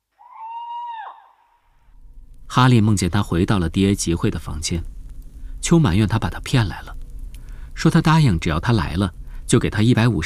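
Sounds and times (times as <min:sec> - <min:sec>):
owl hooting: 0:00.2 - 0:01.6
speech: 0:02.6 - 0:05.0, 0:05.7 - 0:07.0, 0:07.8 - 0:10.2.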